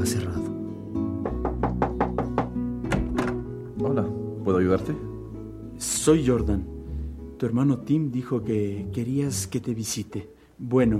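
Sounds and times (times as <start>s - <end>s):
speech: 0.0s - 0.4s, 4.6s - 5.1s, 5.8s - 6.8s, 7.4s - 10.9s
knocking on the door of a closed eatery: 1.2s - 3.5s.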